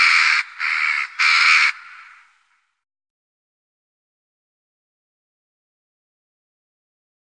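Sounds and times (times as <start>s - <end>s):
jackdaw harsh raspy squawks: 0.0s - 2.3s.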